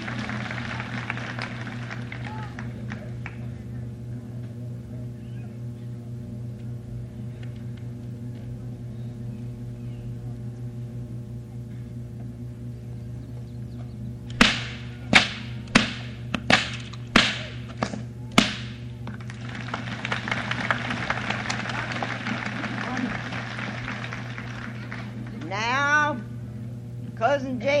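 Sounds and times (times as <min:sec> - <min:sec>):
broad crowd-like noise: 0:00.0 - 0:05.6, 0:18.2 - 0:26.0
steady low hum: 0:00.0 - 0:27.7
bullwhip cracks cutting straws: 0:14.4 - 0:18.8.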